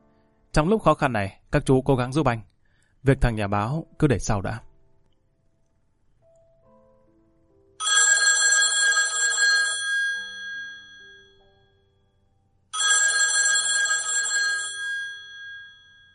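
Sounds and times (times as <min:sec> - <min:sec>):
speech: 0:00.5 - 0:04.7
telephone bell ringing in an office: 0:07.8 - 0:11.8, 0:12.8 - 0:16.1.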